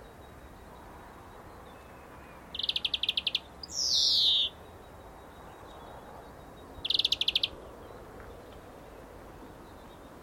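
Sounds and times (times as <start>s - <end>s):
European greenfinch Chloris chloris trilling and wheezing: 2.5s - 4.6s, 5.7s - 7.6s.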